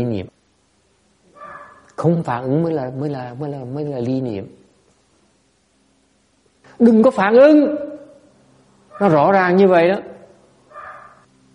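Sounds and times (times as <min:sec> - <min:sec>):
speech: 0:00.0 - 0:00.4, 0:02.0 - 0:04.6, 0:06.8 - 0:07.8, 0:09.0 - 0:10.1
low steady hum: 0:00.0 - 0:11.5
dog barking: 0:01.4 - 0:01.9, 0:08.9 - 0:09.2, 0:10.7 - 0:11.2.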